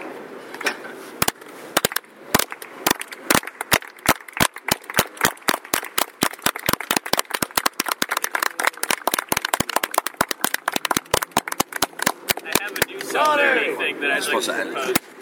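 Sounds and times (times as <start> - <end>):
group clapping in rhythmic solidarity: 1.2 - 13.4
voices murmuring and calling out: 12.2 - 15.1.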